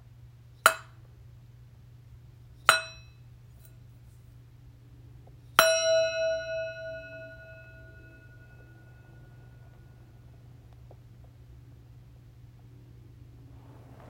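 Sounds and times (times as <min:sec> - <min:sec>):
faint steady hum: 0:00.0 - 0:14.0
meditation bell ringing: 0:05.6 - 0:10.4.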